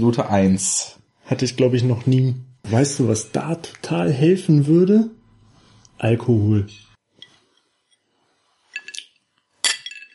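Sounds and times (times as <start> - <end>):
speech: 0.0 - 5.2, 6.0 - 6.8
glasses clinking together in a toast: 6.7 - 8.1, 8.7 - 10.1.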